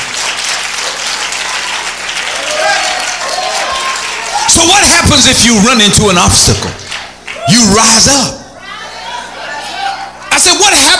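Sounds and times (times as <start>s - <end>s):
audience clapping hands: 0.0s - 5.5s, 6.4s - 7.9s
speech: 5.1s - 6.8s, 7.5s - 8.4s.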